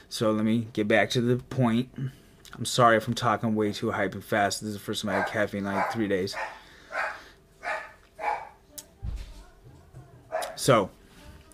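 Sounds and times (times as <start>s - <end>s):
speech: 0.1s - 6.6s, 10.6s - 11.0s
dog barking: 5.1s - 8.6s, 10.3s - 10.7s.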